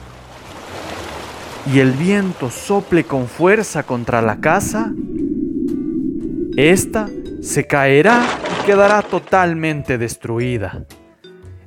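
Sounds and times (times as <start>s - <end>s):
rising river water rushing: 0.0s - 9.0s
speech: 1.6s - 5.2s, 6.6s - 11.0s.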